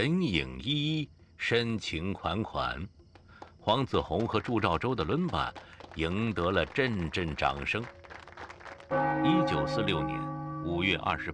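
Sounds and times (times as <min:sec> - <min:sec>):
speech: 0:00.0 - 0:03.0, 0:03.6 - 0:08.0, 0:08.9 - 0:11.3
clock bell striking midnight: 0:08.9 - 0:11.3.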